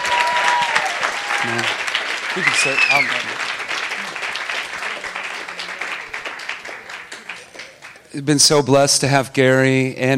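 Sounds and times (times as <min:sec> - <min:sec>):
audience applause: 0:00.0 - 0:08.5
speech: 0:01.4 - 0:01.8, 0:02.4 - 0:03.5, 0:08.1 - 0:10.1.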